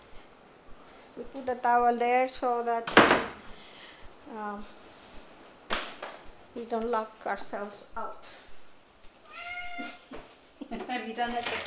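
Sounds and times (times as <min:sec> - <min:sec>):
speech: 0:01.2 - 0:03.3, 0:04.3 - 0:04.8, 0:06.6 - 0:08.4, 0:10.7 - 0:11.6
cat meowing in the kitchen lounge area of a house: 0:09.2 - 0:10.1.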